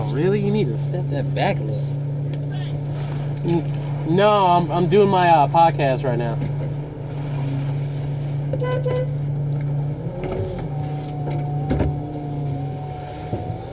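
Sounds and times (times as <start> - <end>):
rising whine from passing traffic: 0.0 - 13.7
street noise through an open truck window: 0.0 - 13.7
truck engine rumble from inside a truck: 0.0 - 13.7
speech: 0.2 - 2.0, 3.4 - 6.5
horn toot: 8.6 - 9.2.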